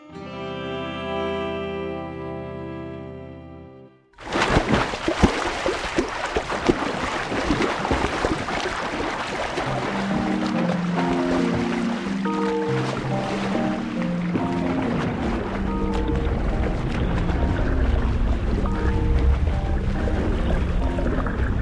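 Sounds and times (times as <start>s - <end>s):
soft musical tones: 0.0s - 4.1s, 9.6s - 21.5s
swimmer without a wetsuit splashing and bubbling through water: 4.2s - 21.5s.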